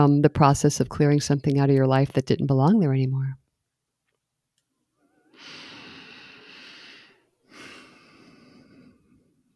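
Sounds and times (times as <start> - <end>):
speech: 0.0 - 3.4
person breathing in near the microphone: 5.3 - 9.3.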